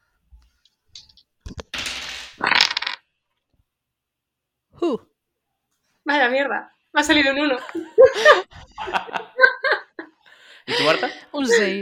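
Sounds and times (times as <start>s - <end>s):
dice being picked up and clicking: 1.0s - 3.0s
speech: 4.8s - 5.1s, 6.1s - 9.2s, 10.7s - 11.8s
laughter: 7.6s - 11.8s.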